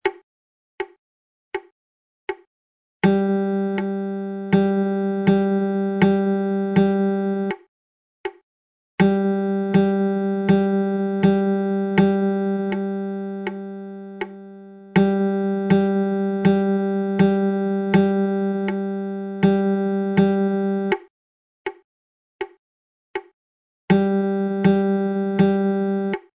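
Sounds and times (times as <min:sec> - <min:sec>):
rhythm strumming: 0:03.0 - 0:07.5, 0:09.0 - 0:21.0, 0:23.9 - 0:26.2.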